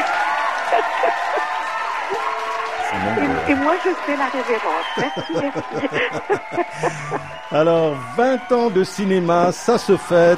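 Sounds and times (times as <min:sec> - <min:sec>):
audience applauding warmly: 0:00.0 - 0:10.3
cheers: 0:00.0 - 0:10.3
crowd voices: 0:00.0 - 0:10.3
laughter: 0:00.6 - 0:02.2, 0:02.9 - 0:09.0
speech: 0:00.8 - 0:10.3.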